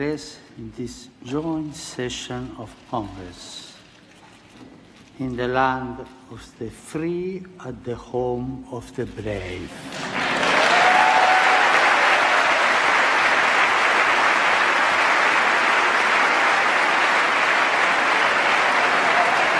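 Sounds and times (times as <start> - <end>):
speech: 0.0 - 3.7, 5.2 - 10.1
large crowd giving a standing ovation in Congress: 9.8 - 19.5
cheers and whoops in Congress: 10.4 - 19.5.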